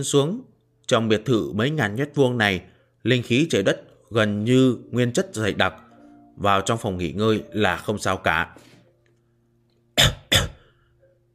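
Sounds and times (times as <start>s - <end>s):
speech: 0.0s - 5.8s, 6.4s - 8.7s
man dry coughing up blood: 10.0s - 10.7s.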